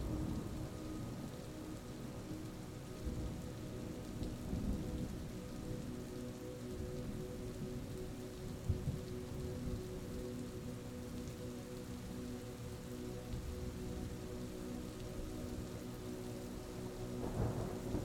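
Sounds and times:
faint thunder rumbles: 0.0s - 6.0s, 6.7s - 9.9s, 17.1s - 18.0s
gentle relaxing music with soft sustained low tones: 0.0s - 18.0s
steady rain: 0.0s - 18.0s.

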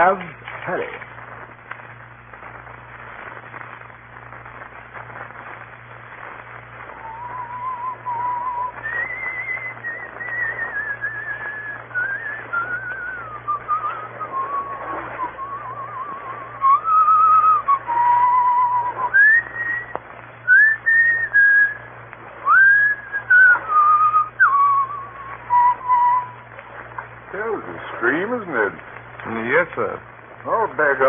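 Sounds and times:
speech: 0.0s - 1.1s
low steady hum: 0.0s - 31.0s
man whistling a slow flowing folk melody: 6.9s - 26.5s.

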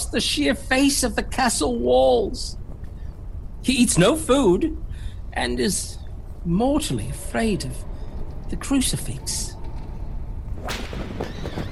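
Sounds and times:
speech: 0.1s - 2.6s, 3.6s - 7.9s, 8.5s - 9.6s
heavy wheels rolling: 5.6s - 11.7s
whip crack in a courtyard: 10.6s - 11.7s.

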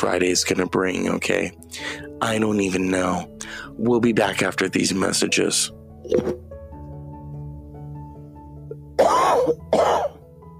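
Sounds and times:
speech: 0.0s - 6.5s
harsh throat-clearing coughs: 9.0s - 10.2s.

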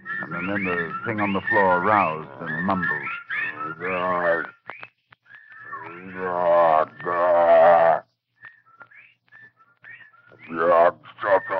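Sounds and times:
whippoorwills calling in short rising whistled phrases: 0.0s - 11.5s
speech: 0.3s - 4.6s, 6.0s - 8.0s
loud drawn-out bleating moan: 6.0s - 8.0s.

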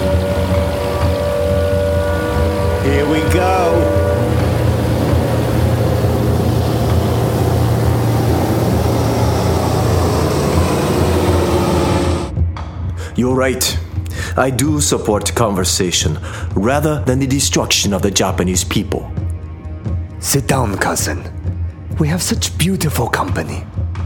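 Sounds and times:
patrol boat motorboat engine droning: 0.0s - 12.4s
speech: 3.1s - 4.0s, 13.2s - 13.8s, 14.4s - 19.1s, 20.2s - 21.4s, 22.0s - 23.8s.

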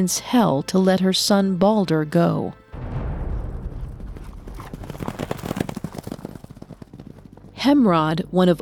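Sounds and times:
speech: 0.0s - 2.6s, 7.7s - 8.6s
horse hooves galloping: 3.7s - 8.6s.

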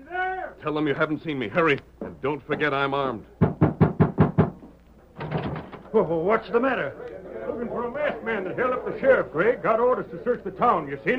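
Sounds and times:
speech: 0.6s - 3.3s, 6.0s - 11.1s
firm knocking on a wooden door: 3.4s - 4.6s.

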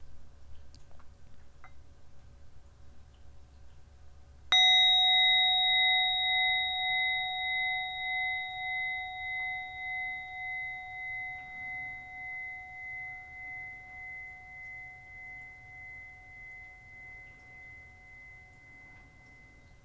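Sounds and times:
meditation bell struck with bright sustained tone: 4.5s - 19.8s.

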